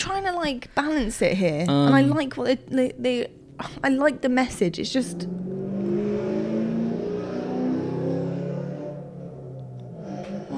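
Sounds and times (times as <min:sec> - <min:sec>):
speech: 0:00.0 - 0:05.5
loud car engine revving while rolling past the window: 0:02.2 - 0:10.5.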